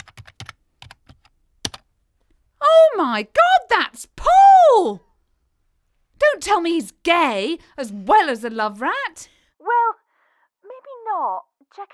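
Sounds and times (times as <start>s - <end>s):
typing on a computer keyboard to enter a web search: 0.0s - 1.9s
speech: 3.0s - 5.1s, 6.4s - 9.4s, 11.2s - 11.9s.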